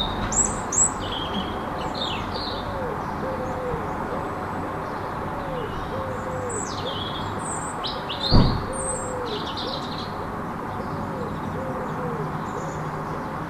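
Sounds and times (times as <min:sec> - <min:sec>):
European robin singing in a city: 0:00.0 - 0:13.4
constant city rumble: 0:00.0 - 0:13.4
pigeon cooing: 0:02.5 - 0:04.4, 0:05.3 - 0:07.2, 0:08.0 - 0:09.9, 0:11.0 - 0:13.4
thud: 0:08.3 - 0:08.7.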